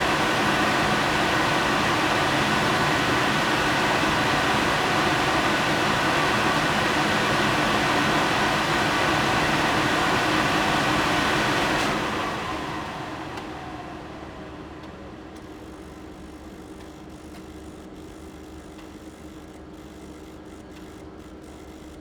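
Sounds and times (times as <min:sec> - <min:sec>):
industrial gas boiler stopping in a boiler room: 0:00.0 - 0:15.8.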